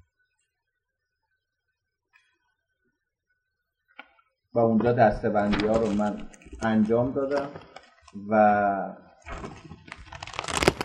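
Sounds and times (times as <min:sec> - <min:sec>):
speech: 0:04.6 - 0:09.6
pages of a printed paper course booklet with plastic cover and spiral binding rustling: 0:05.4 - 0:08.2, 0:09.2 - 0:10.8.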